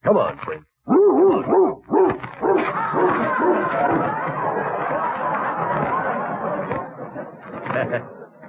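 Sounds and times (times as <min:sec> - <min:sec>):
speech: 0:00.1 - 0:01.8
dog barking: 0:00.9 - 0:03.8
murmur of people talking: 0:01.4 - 0:08.4
laughter: 0:02.4 - 0:08.4.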